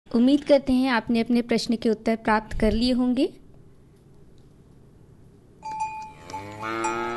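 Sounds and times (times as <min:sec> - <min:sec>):
speech: 0:00.1 - 0:03.4
dairy cow lowing: 0:06.1 - 0:07.1.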